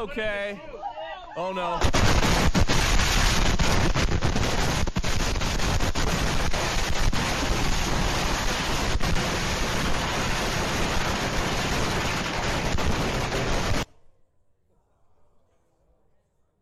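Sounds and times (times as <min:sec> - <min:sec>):
speech: 0:00.0 - 0:02.6
fireworks crackling and popping in rapid bursts: 0:01.7 - 0:13.9.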